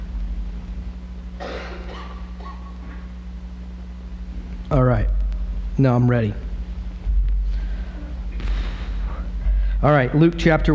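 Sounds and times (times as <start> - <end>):
steady low electrical hum: 0.0 - 10.7
person coughing: 1.4 - 3.1
speech: 5.8 - 6.5, 9.8 - 10.7.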